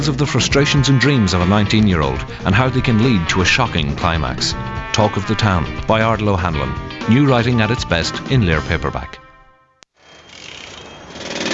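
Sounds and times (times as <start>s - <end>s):
speech: 0.0s - 9.2s
loud, harsh pneumatic drill hammering: 10.6s - 11.5s.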